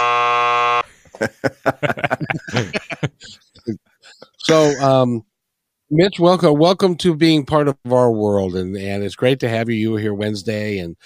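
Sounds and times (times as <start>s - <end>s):
loud flat electronic buzzer: 0.0s - 0.9s
speech: 1.2s - 3.8s, 4.4s - 5.3s, 5.9s - 11.0s
people chuckling: 1.2s - 4.9s
people chattering: 4.4s - 5.2s.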